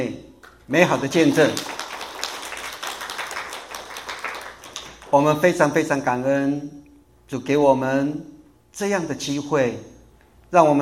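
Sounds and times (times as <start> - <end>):
speech: 0.0 - 1.8, 5.1 - 9.9, 10.5 - 10.8
congregation applauding: 0.8 - 5.2.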